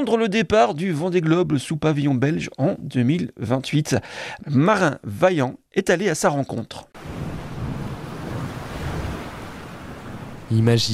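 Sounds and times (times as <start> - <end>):
speech: 0.0 - 7.2, 10.5 - 10.9
strong wind roaring over the microphone: 7.0 - 10.5
rough stormy sea waves crashing: 7.0 - 10.9.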